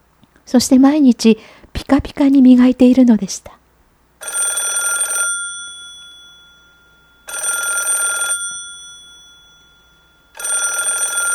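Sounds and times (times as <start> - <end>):
speech: 0.5 - 3.6
telephone bell ringing: 4.2 - 11.3.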